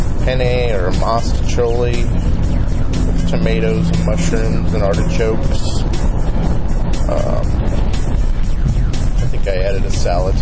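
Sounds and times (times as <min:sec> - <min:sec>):
truck engine rumbling by: 0:00.0 - 0:10.4
whining tone: 0:00.0 - 0:10.4
speech: 0:00.2 - 0:02.7, 0:03.3 - 0:07.8, 0:09.4 - 0:10.4.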